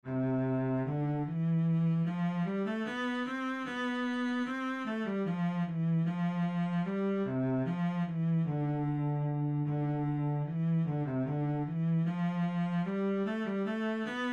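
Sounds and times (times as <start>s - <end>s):
cello playing a minuet: 0.0s - 14.3s.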